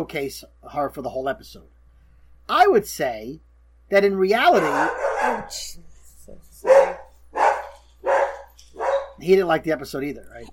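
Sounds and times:
speech: 0:00.0 - 0:01.8, 0:02.5 - 0:06.4, 0:09.2 - 0:10.5
dog barking: 0:04.6 - 0:05.6, 0:06.6 - 0:09.2.

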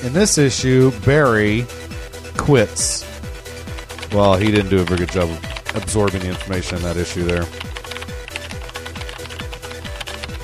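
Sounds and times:
speech: 0:00.0 - 0:03.1, 0:04.1 - 0:07.7
regular thumping low beat: 0:00.0 - 0:10.4
rapid dense keyboard typing: 0:03.7 - 0:10.4.

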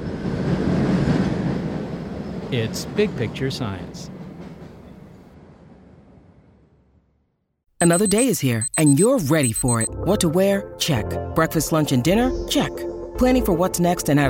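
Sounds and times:
Boston subway train rumbling into a T station: 0:00.0 - 0:06.9
speech: 0:02.5 - 0:04.2, 0:07.8 - 0:14.2.

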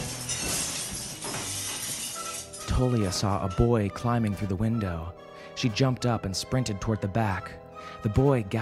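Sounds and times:
glass shattering with tinkling shards: 0:00.0 - 0:03.6
speech: 0:02.8 - 0:08.5.

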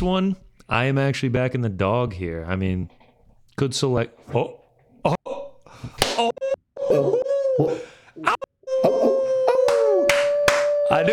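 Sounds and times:
speech: 0:00.0 - 0:03.0, 0:03.6 - 0:05.2, 0:06.2 - 0:09.0, 0:10.9 - 0:11.1
person imitating a wolf howl: 0:06.4 - 0:11.1
excited talk: 0:09.6 - 0:11.1.

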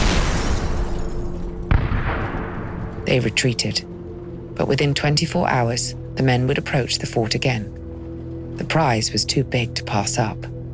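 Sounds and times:
loud explosive boom: 0:00.0 - 0:02.9
speech: 0:03.1 - 0:03.9, 0:04.6 - 0:07.8, 0:08.6 - 0:10.6.

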